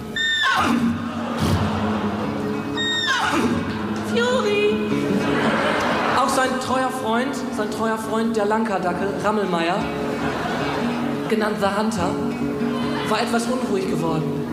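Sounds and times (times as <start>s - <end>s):
voice imitating a horse's whinny: 0.2s - 1.6s, 2.8s - 3.7s
laughter: 0.8s - 4.0s, 4.9s - 7.1s, 9.0s - 11.9s, 12.7s - 13.5s
speech: 6.7s - 10.5s, 11.3s - 12.5s, 13.1s - 14.4s.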